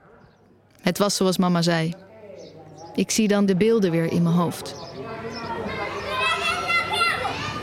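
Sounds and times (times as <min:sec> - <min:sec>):
speech: 0:00.8 - 0:02.0, 0:03.0 - 0:04.9
chatter of children playing: 0:00.9 - 0:07.6
young neighbour boy calling out for his mother: 0:05.5 - 0:07.6.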